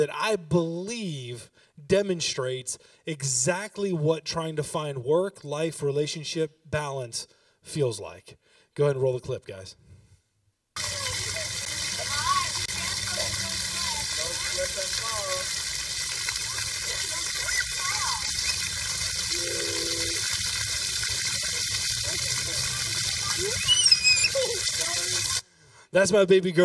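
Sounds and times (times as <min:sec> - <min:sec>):
speech: 0:00.0 - 0:09.8, 0:25.9 - 0:26.6
water running from a tap: 0:10.8 - 0:25.4.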